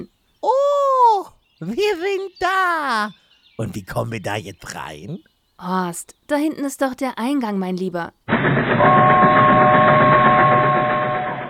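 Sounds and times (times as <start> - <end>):
speech: 1.6 - 9.4
train rumbling past with a sustained high whine: 8.3 - 11.4.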